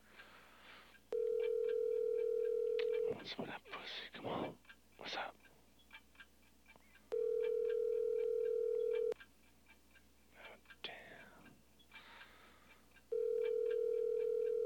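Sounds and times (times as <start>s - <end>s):
telephone ringing: 1.1s - 3.3s, 7.1s - 9.2s, 13.1s - 14.6s
faint whispery sounds: 2.8s - 5.7s, 10.3s - 12.8s
speech: 3.2s - 5.3s.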